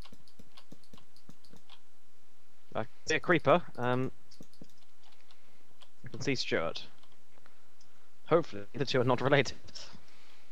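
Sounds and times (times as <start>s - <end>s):
computer mouse clicking during video gameplay: 0.0s - 1.8s, 3.7s - 5.9s
speech: 2.8s - 4.2s, 6.1s - 6.9s, 8.3s - 9.9s.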